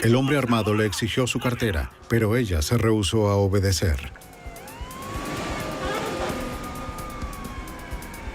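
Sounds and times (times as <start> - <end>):
speech: 0.0 - 4.3
low rumble of traffic and street noise: 3.9 - 8.3
police siren wailing in Cincinnati: 4.1 - 8.3.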